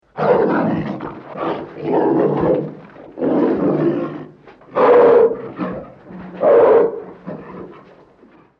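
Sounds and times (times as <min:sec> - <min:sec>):
Siberian tiger growling: 0:00.1 - 0:08.5.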